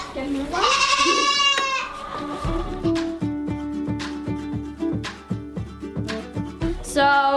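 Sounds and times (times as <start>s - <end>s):
speech: 0.2s - 0.8s
goat bleating: 0.5s - 2.2s
rhythmic thumping: 2.4s - 7.0s.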